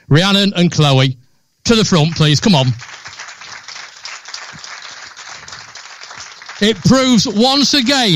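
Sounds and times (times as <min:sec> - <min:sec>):
speech: 0:00.1 - 0:03.0, 0:06.6 - 0:08.1
crowd applauding award finalists: 0:01.8 - 0:08.1.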